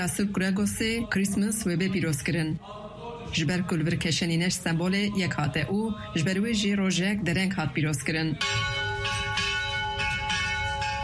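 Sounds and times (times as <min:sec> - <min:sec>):
speech: 0:00.0 - 0:08.8
church bells ringing at an old Armenian church during Christmas celebrations: 0:08.4 - 0:11.0.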